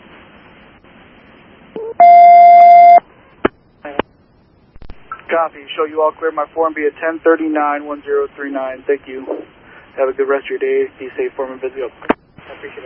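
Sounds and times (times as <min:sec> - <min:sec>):
longer louder tone: 0:01.8 - 0:03.0
speech: 0:05.3 - 0:09.4, 0:10.0 - 0:12.8.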